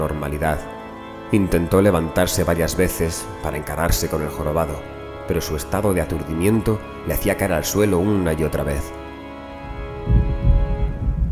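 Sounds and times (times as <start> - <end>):
speech: 0.0 - 9.0
sustained tonal drone: 0.0 - 11.3
low rolling thunder: 9.7 - 11.3.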